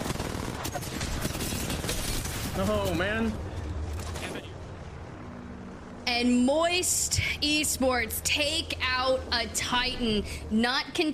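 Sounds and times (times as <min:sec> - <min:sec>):
video game gunfire: 0:00.0 - 0:02.9
speech: 0:02.6 - 0:03.5, 0:06.1 - 0:11.1.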